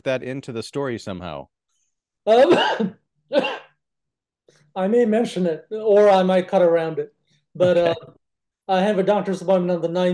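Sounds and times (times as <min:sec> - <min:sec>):
speech: 0:00.0 - 0:01.6, 0:02.2 - 0:03.6, 0:04.8 - 0:10.1
raspy coughs: 0:02.4 - 0:03.8.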